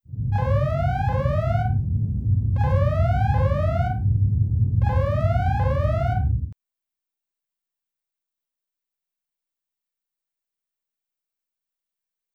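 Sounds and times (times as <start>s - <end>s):
red alert alarm: 0.2s - 4.1s, 4.8s - 6.6s.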